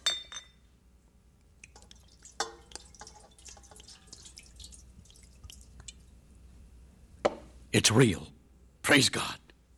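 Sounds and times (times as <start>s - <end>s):
glass bottle clinking as it is opened: 0.0s - 0.6s
liquid from a glass bottle trickling and splashing down a drain: 1.6s - 6.3s
speech: 7.8s - 9.4s.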